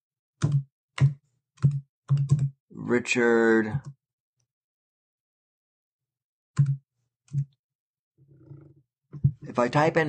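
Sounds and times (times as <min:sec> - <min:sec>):
typing on a computer keyboard: 0:00.4 - 0:02.5
speech: 0:00.4 - 0:04.0, 0:06.6 - 0:07.5, 0:09.4 - 0:10.0.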